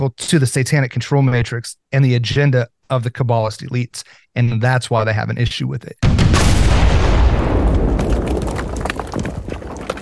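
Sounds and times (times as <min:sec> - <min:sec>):
speech: 0:00.0 - 0:06.1
debris crackling and popping: 0:06.0 - 0:10.0
explosion booming: 0:06.0 - 0:10.0.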